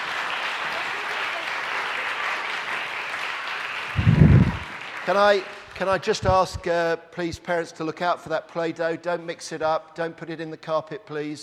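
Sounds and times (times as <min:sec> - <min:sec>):
small crowd applause: 0:00.0 - 0:06.6
speech: 0:05.1 - 0:11.4.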